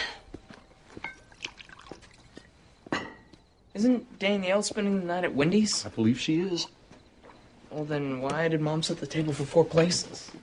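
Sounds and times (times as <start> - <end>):
light clinks and taps of a glass: 1.0 - 1.5, 2.8 - 3.5
wine poured into a glass in a trickling stream: 1.0 - 2.6
speech: 3.8 - 6.8, 7.8 - 10.4.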